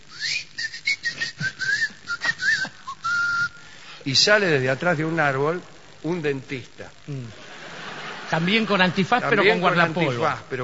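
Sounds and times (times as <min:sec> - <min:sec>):
person whistling rapid bright notes with upward slides: 0:00.1 - 0:03.7
speech: 0:04.0 - 0:07.4, 0:08.3 - 0:10.6
laughter: 0:07.3 - 0:10.4.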